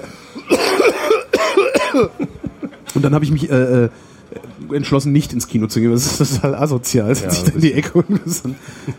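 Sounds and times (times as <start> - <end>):
person coughing: 0.4 - 2.4
speech: 2.0 - 8.9
laughter: 7.3 - 8.9.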